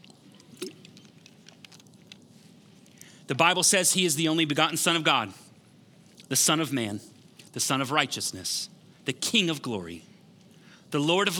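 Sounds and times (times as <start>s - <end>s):
swallow: 0.0s - 1.8s
soft wet mouth clicks: 0.0s - 2.2s
person sipping water: 0.0s - 3.1s
speech: 3.3s - 5.4s, 6.3s - 10.1s, 10.9s - 11.3s.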